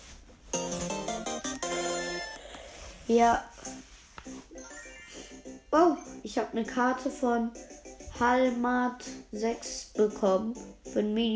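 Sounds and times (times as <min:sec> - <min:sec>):
mobile strategy game electronic jingle: 0:00.6 - 0:02.5, 0:04.5 - 0:06.3
speech: 0:03.1 - 0:03.5, 0:05.7 - 0:11.3.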